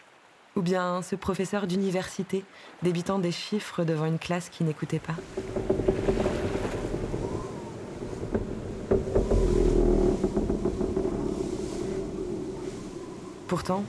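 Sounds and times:
rumble of water and hull of a sailing vessel: 0.3s - 13.8s
speech: 0.6s - 6.3s, 13.6s - 13.8s
sailing vessel creaks and thumps: 4.8s - 13.8s
wind blowing at sea: 4.9s - 13.8s.

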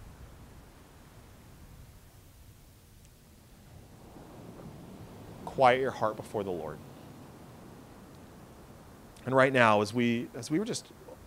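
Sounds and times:
ocean waves: 3.2s - 11.2s
speech: 5.6s - 6.9s, 9.3s - 11.0s.

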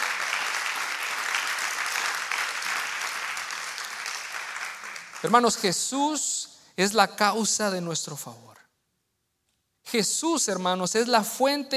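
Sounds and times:
audience applauding loudly: 0.0s - 5.6s
speech: 5.2s - 8.6s, 9.9s - 11.7s.

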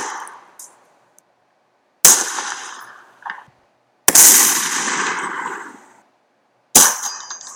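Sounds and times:
comedic pistol gunshot sound effects: 0.0s - 0.7s, 2.0s - 3.4s, 4.1s - 6.0s, 6.7s - 7.5s.

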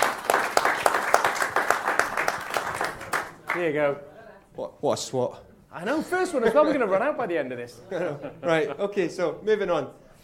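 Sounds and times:
audience applause: 0.0s - 3.7s
speech: 3.6s - 10.0s
laughter: 7.8s - 9.1s.

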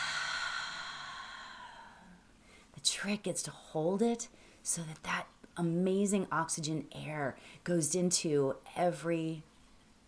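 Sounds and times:
long deep breath released in a slow soft exhale: 0.0s - 2.7s
speech: 2.8s - 9.5s.

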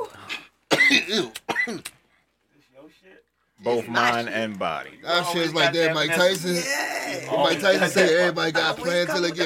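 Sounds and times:
person coughing: 0.7s - 1.9s
speech: 0.9s - 2.0s, 3.0s - 9.4s.

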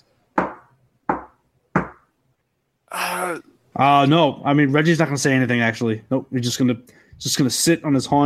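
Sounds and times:
firm knocking on a door: 0.4s - 2.1s
speech: 3.2s - 8.2s.

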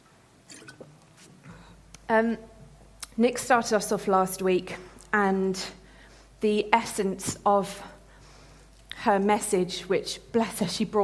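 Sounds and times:
person slurping a quick sip of a drink: 0.5s - 1.5s
speech: 2.1s - 2.5s, 3.2s - 5.8s, 6.4s - 7.9s, 9.0s - 11.0s.

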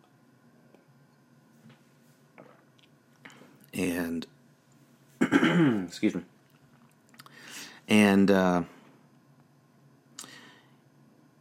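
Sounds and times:
speech: 3.8s - 4.3s, 5.6s - 6.3s, 7.9s - 8.8s
person sipping water: 6.4s - 7.5s.

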